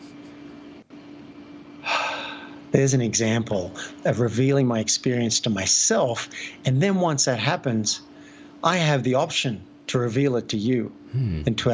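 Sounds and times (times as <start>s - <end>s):
low steady hum: 0.0s - 11.7s
quiet drawn-out inhale: 1.8s - 2.6s
speech: 2.7s - 11.7s.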